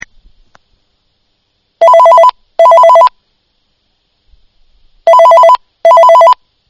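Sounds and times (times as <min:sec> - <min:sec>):
ringtone: 0:01.8 - 0:03.2, 0:05.1 - 0:06.4.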